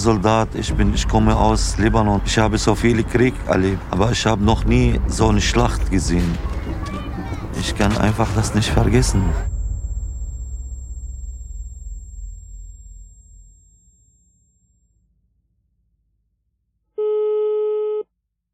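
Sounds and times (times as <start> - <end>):
speech: 0.0 - 6.5, 7.6 - 9.5
low rumble: 0.0 - 16.7
telephone line tone while calling someone: 17.0 - 18.0.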